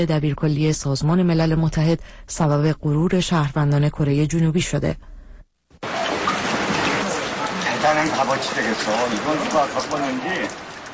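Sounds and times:
speech: 0.0 - 5.1, 8.0 - 10.7
steady rain falling in Chungju: 5.8 - 10.9.

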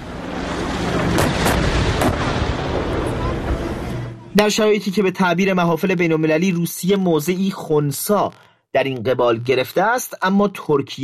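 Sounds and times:
heavy artillery fire: 0.0 - 4.2
speech: 4.4 - 11.0.

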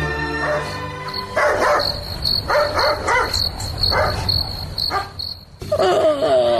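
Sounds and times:
crickets chirping at night: 0.2 - 6.5
dog barking at night: 0.4 - 4.3, 4.9 - 5.2.

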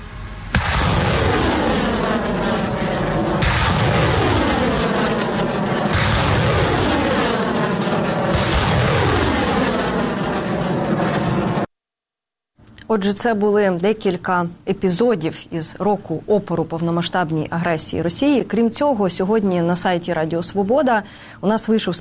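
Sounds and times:
multiple rocket launcher firing a salvo of rockets: 0.6 - 11.7
speech: 13.0 - 22.0.

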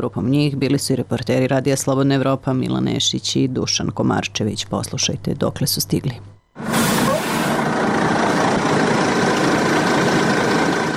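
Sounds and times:
speech: 0.0 - 6.4
large bus engine idling: 6.6 - 10.9.

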